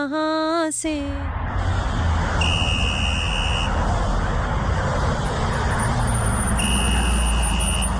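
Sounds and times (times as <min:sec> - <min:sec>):
speech: 0:00.0 - 0:01.8
car engine and road noise: 0:00.8 - 0:07.9
long high electronic car warning beep: 0:02.4 - 0:03.8, 0:05.7 - 0:07.9.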